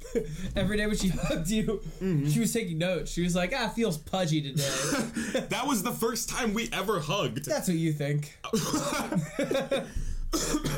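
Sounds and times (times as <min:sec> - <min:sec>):
speech: 0:00.1 - 0:10.7
person coughing: 0:04.6 - 0:05.4, 0:08.5 - 0:10.7.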